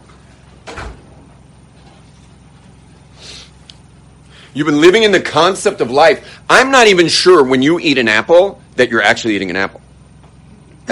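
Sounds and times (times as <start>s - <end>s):
door shutting with a soft thud and rattle: 0.6s - 1.2s
speech: 4.5s - 9.8s.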